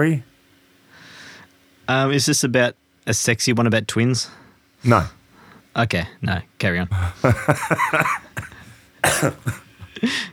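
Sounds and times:
speech: 0:00.0 - 0:00.3, 0:01.9 - 0:05.2, 0:05.8 - 0:10.3
harsh coughing: 0:04.8 - 0:05.2, 0:06.9 - 0:10.3
breathy laughing gasps: 0:04.8 - 0:05.5, 0:06.9 - 0:10.3.

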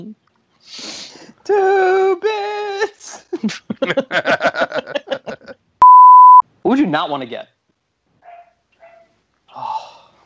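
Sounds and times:
speech: 0:00.0 - 0:02.5, 0:03.4 - 0:04.3, 0:07.0 - 0:07.6
laughter: 0:03.3 - 0:05.6
dog barking: 0:08.2 - 0:09.2.

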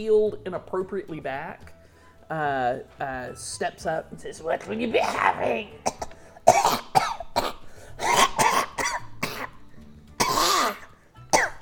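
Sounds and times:
speech: 0:00.0 - 0:06.0
man coughing wet phlegmy coughs into his hands: 0:05.0 - 0:09.6, 0:10.2 - 0:11.5.

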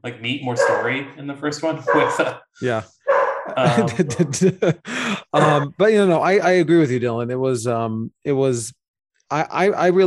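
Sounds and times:
speech: 0:00.0 - 0:10.0
dog barking: 0:00.5 - 0:01.1, 0:01.7 - 0:02.4, 0:03.1 - 0:04.3
laughter: 0:03.5 - 0:06.4.

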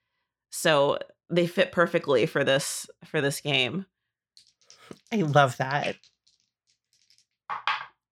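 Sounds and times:
speech: 0:00.6 - 0:03.9, 0:04.9 - 0:06.1
two glitter dice clattering on a hard surface: 0:04.4 - 0:05.1, 0:05.9 - 0:08.0.

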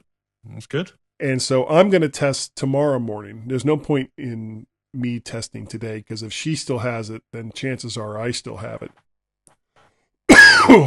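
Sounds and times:
speech: 0:00.4 - 0:09.0
harsh raspy cough: 0:10.3 - 0:10.8.

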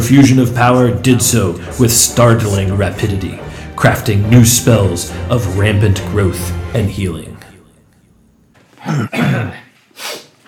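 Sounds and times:
speech: 0:00.0 - 0:07.3, 0:08.8 - 0:09.6
throat-clearing cough into microphone: 0:08.8 - 0:09.8
sharp nasal snort against the microphone: 0:09.9 - 0:10.3.

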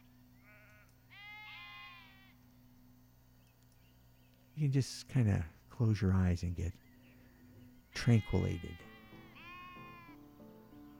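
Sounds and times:
sheep bleating: 0:00.4 - 0:02.4, 0:07.9 - 0:10.2
speech: 0:04.6 - 0:06.8, 0:08.0 - 0:08.9.

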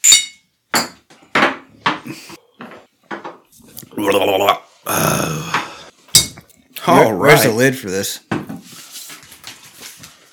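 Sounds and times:
shot glasses of Canadian whiskey clinking in a toast: 0:00.0 - 0:01.0
speech: 0:02.0 - 0:02.3, 0:04.0 - 0:05.5, 0:06.9 - 0:08.3.

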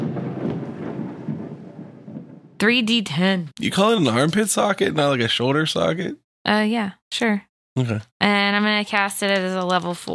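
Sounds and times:
thunder sound effect in a tabletop role-playing game: 0:00.0 - 0:03.2
speech: 0:02.6 - 0:10.1.

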